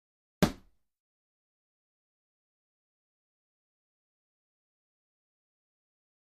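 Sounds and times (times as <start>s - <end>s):
boxing bag hit: 0.4s - 0.6s.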